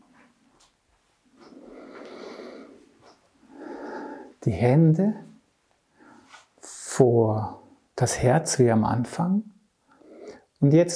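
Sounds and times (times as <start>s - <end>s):
slow deep breathing in and out: 1.4s - 4.4s, 5.9s - 6.6s, 9.8s - 10.6s
speech: 4.4s - 5.3s, 7.0s - 9.5s, 10.6s - 10.9s.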